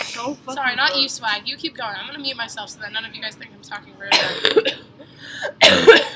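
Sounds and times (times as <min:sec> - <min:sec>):
speech: 0:00.2 - 0:06.1
person coughing: 0:04.1 - 0:06.1.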